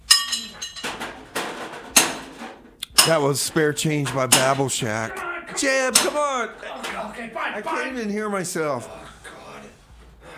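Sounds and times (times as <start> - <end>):
over-torqued metal bolts clanking while being worked loose: 0.0 - 1.2, 1.9 - 3.4, 4.0 - 4.8, 5.8 - 6.4
speech: 3.0 - 9.0.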